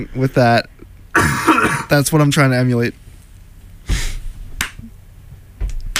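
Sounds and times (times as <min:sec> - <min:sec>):
speech: 0:00.0 - 0:03.0
sharp hand claps: 0:04.6 - 0:04.9, 0:05.7 - 0:05.9
heavy booming foot stomps: 0:05.6 - 0:05.9.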